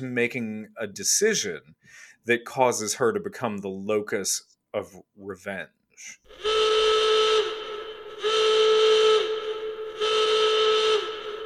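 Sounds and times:
speech: 0.0 - 6.8
loud shrill fire drill alarm whistle blasts: 6.3 - 11.4.

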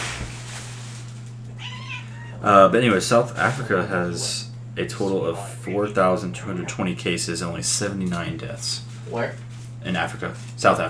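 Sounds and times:
rustling of a trash bag of clothes in an office: 0.0 - 2.0, 3.1 - 3.8, 8.0 - 10.8
low electrical hum: 0.0 - 10.8
house cat meowing: 1.5 - 2.5
speech: 2.4 - 10.8.

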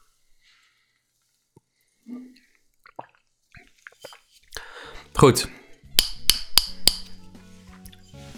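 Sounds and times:
speech: 2.1 - 2.5, 5.2 - 5.6
sharp ringing taps on a glass bottle: 6.0 - 7.2.

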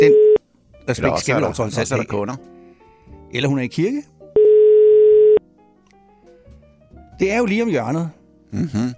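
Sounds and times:
telephone ringback tone while placing a phone call: 0.0 - 0.4, 4.4 - 5.4
speech: 0.9 - 2.6, 3.3 - 4.1, 7.2 - 8.9.

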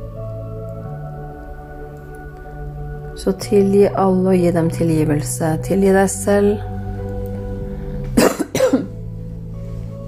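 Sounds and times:
speech: 3.2 - 6.8
person coughing: 8.2 - 9.0.

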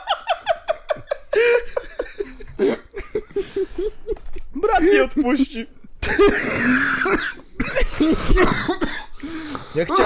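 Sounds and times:
laughter: 0.0 - 4.3
speech: 4.8 - 7.3, 8.0 - 8.7, 9.8 - 10.0
person coughing harshly: 6.0 - 10.0.

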